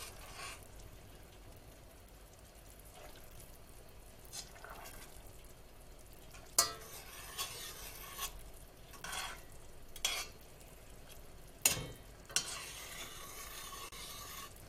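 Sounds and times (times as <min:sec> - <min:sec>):
spoon stirring thickening jam in a pot: 0:00.0 - 0:00.9, 0:04.2 - 0:05.3, 0:06.2 - 0:14.6
jam simmering sizzle in a pot: 0:00.0 - 0:14.6.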